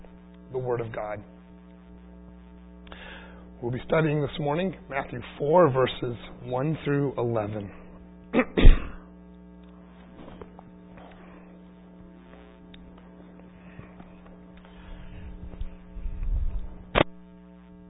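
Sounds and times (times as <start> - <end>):
steady electrical hum: 0.0 - 17.8
speech: 0.5 - 1.4, 3.6 - 8.8
sharp cough: 8.3 - 9.1.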